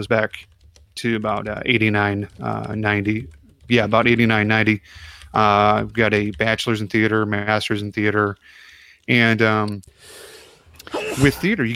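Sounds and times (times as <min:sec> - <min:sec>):
speech: 0:00.0 - 0:11.7
person sneezing with breathy intake: 0:10.8 - 0:11.4.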